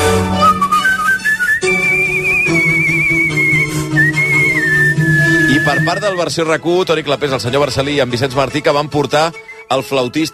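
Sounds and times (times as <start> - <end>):
soft instrumental accompaniment: 0.0 - 10.3
professional whistler whistling a tune: 0.3 - 6.2, 9.3 - 10.3
speech: 5.9 - 10.3.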